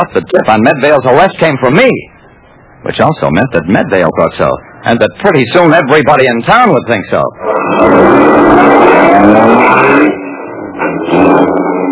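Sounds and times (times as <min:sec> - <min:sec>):
speech: 0:00.0 - 0:02.1, 0:02.8 - 0:10.2, 0:10.8 - 0:11.6
car engine revving loudly as the vehicle pulls away: 0:07.4 - 0:11.9.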